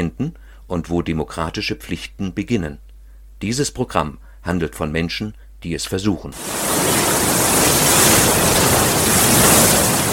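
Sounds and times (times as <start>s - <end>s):
speech: 0.0s - 6.8s
Indian Ocean surf breaking on the beach at Port Alfred, Eastern Cape, South Africa: 6.4s - 10.1s.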